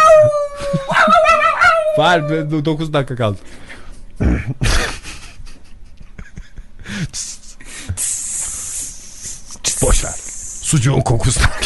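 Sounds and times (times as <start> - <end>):
dog howling outside: 0.0 - 2.5
speech: 2.0 - 3.6, 4.4 - 4.7, 10.7 - 11.6
laughter: 4.2 - 8.0, 11.2 - 11.6.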